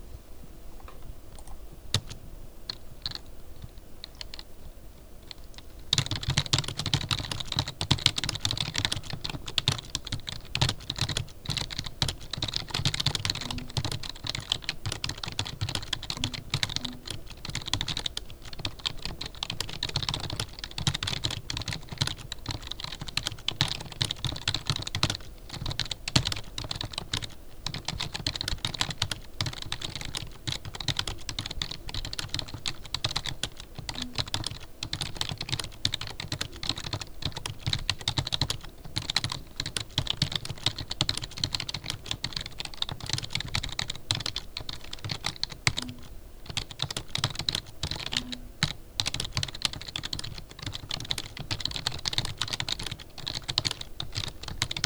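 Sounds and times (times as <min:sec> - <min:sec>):
Microsoft RT2300 keyboard: 0:00.8 - 0:03.2, 0:05.5 - 0:54.8.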